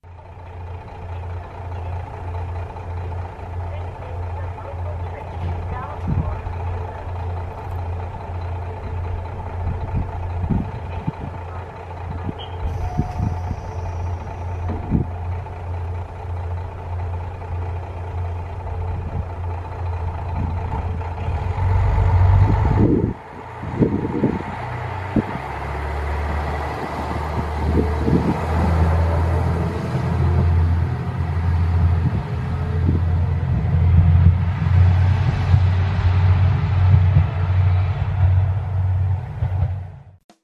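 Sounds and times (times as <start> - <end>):
diesel railcar engine idling and revving as it departs a station: 0.0 - 40.2
short high whistle: 12.4 - 14.2.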